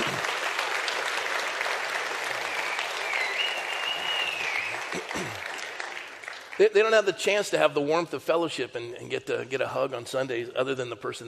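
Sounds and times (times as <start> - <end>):
audience applauding: 0.0 - 6.9
faint whistle: 2.4 - 4.9
speech: 6.6 - 11.2.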